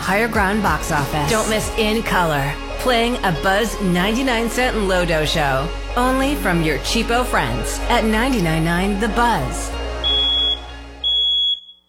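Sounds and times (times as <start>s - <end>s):
speech: 0.1s - 9.8s
smoke detector alarm beeps: 10.0s - 11.8s.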